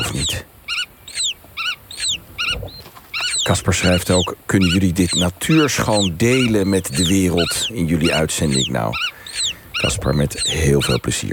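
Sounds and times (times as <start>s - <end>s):
black-tailed godwit parents calling to chicks in the egg: 0.0s - 11.3s
speech: 3.5s - 11.3s.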